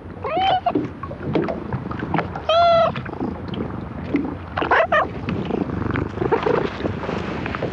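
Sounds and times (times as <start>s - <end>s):
light outdoor noise at a fishing port: 0.0s - 7.7s
cat meowing: 0.2s - 0.8s, 2.5s - 3.0s
friendly cat purring: 5.5s - 6.8s.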